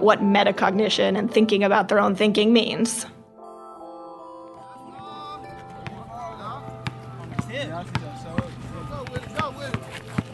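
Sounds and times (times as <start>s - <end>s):
speech: 0.0s - 3.2s
voices chattering: 4.6s - 10.3s
basketball bouncing on hard pavement outdoors: 6.8s - 10.3s.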